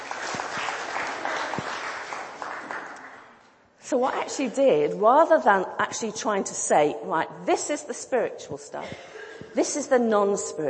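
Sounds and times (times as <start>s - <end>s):
room full of people clapping: 0.0s - 3.4s
speech: 3.9s - 10.6s.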